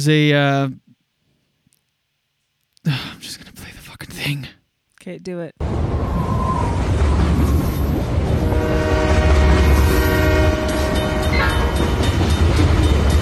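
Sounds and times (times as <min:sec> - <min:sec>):
speech: 0:00.0 - 0:00.8, 0:04.1 - 0:05.8
train passing through a village with rumble and rail clatter: 0:05.6 - 0:13.1
sustained train horn blast: 0:07.5 - 0:12.2.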